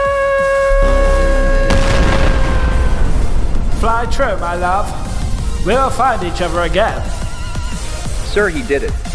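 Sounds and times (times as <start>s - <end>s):
deep rumble: 0.6s - 9.1s
steady electronic hum: 0.7s - 7.9s
big explosion roaring loudly: 0.7s - 8.6s
speech: 4.0s - 5.0s, 5.6s - 7.2s, 8.4s - 9.1s.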